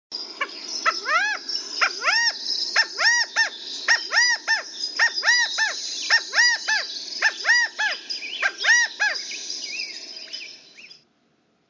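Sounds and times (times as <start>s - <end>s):
background hiss: 0.2s - 11.6s
California quail calling with arched nasal notes: 0.4s - 9.3s.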